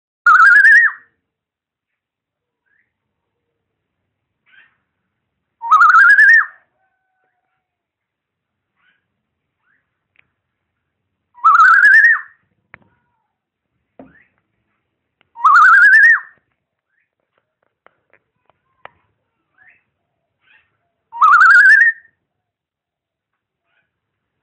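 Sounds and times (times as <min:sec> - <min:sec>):
black-naped oriole singing: 0:00.3 - 0:01.1, 0:05.6 - 0:07.6, 0:11.3 - 0:12.4, 0:15.3 - 0:17.2, 0:19.5 - 0:22.8.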